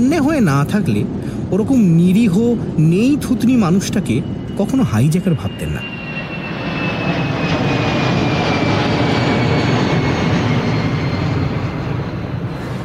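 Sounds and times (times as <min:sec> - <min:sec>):
speech: 0:00.0 - 0:06.0
airplane engine roar while landing at Santa Cruz: 0:00.0 - 0:12.8
thin high whine of a landing airplane: 0:03.0 - 0:07.7.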